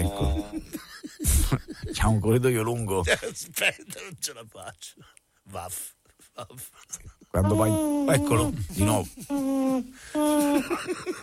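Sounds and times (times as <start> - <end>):
voice imitating a little owl's hooting: 0.0 - 0.7, 7.4 - 10.5
laughter: 0.0 - 4.2, 10.2 - 11.2
speech: 2.0 - 11.2.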